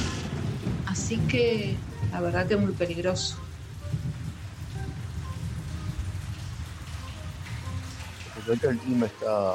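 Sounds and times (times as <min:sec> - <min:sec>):
faint drips: 0:00.0 - 0:09.5
steady rain falling: 0:00.0 - 0:09.5
speech: 0:00.9 - 0:03.5, 0:08.5 - 0:09.5.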